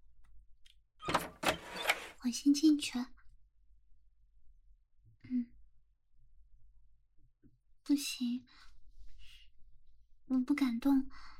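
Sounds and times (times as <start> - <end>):
lock clicks: 1.0 - 2.1
door at the end of a passage rattling and creaking open: 1.0 - 2.2
speech: 2.2 - 3.2, 7.9 - 8.7, 10.3 - 11.3.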